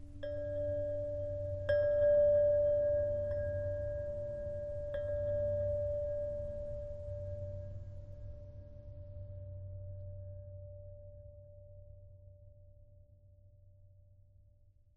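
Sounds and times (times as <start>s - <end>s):
low ambient abstract chimes: 0.2s - 9.2s.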